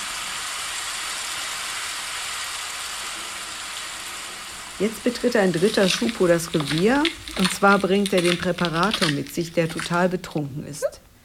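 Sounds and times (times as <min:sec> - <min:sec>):
steady rain falling: 0:00.0 - 0:10.2
speech: 0:04.8 - 0:11.0.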